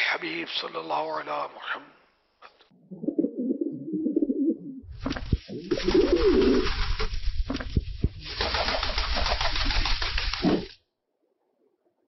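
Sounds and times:
speech: 0.1s - 2.0s, 2.7s - 3.1s
wild pigeon cooing in low throaty rolling calls: 2.8s - 4.9s, 5.7s - 6.6s
broad rustling flapping noise: 5.0s - 10.8s.

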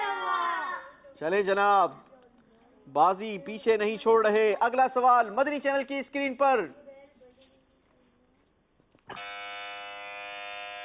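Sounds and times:
speech: 1.2s - 2.1s, 2.9s - 6.8s
electronic quiz buzzer pressed by a contestant: 9.1s - 10.8s.

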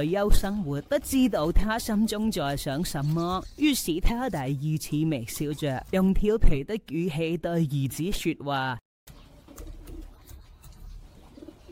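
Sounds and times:
speech: 0.0s - 8.8s
pigeon cooing: 9.6s - 11.7s.

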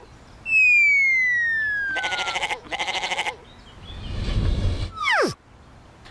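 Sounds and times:
long falling whistle-like tone: 0.5s - 2.1s, 4.9s - 5.4s
goats bleating: 2.0s - 3.4s
rushing noise: 3.8s - 5.4s.

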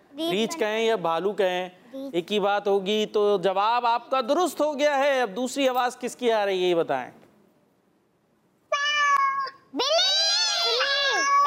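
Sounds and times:
speech: 0.2s - 7.2s
cat meowing: 8.7s - 11.4s.

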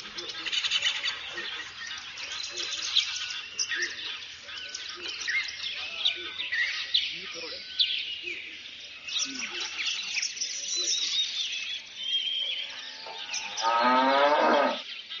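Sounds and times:
birds chirping: 0.0s - 15.1s
cow mooing: 12.9s - 14.8s.

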